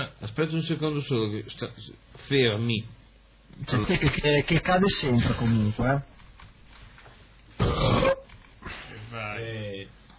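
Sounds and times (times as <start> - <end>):
speech: 0.4 - 6.1
loud rough burp: 7.6 - 8.3.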